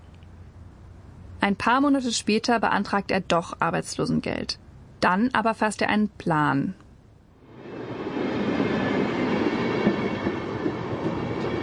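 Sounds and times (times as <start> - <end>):
speech: 1.4 - 6.8
train rolling along the rails: 7.5 - 11.6.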